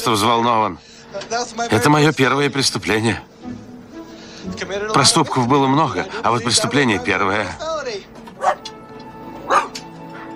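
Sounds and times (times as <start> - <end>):
speech: 0.0 - 3.6, 4.4 - 8.6
terrier and caged St. Bernard puppy barking: 8.3 - 10.3
St. Bernard puppy yip: 8.4 - 8.7, 9.5 - 10.3.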